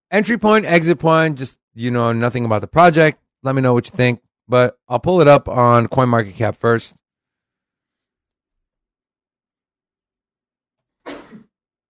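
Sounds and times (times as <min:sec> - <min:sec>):
speech: 0:00.1 - 0:07.0
person sneezing: 0:11.0 - 0:11.5.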